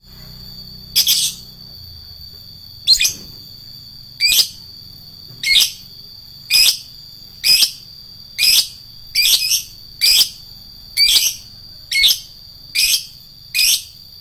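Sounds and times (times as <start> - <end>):
adult lovebird piercing chirps: 0.7 - 1.6, 2.8 - 3.4, 4.2 - 4.6, 5.4 - 5.9, 6.5 - 14.0.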